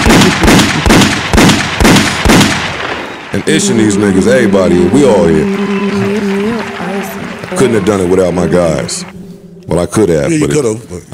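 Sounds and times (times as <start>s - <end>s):
gunshots with booming echo: 0.0s - 3.8s
speech: 3.3s - 6.1s, 7.5s - 11.1s.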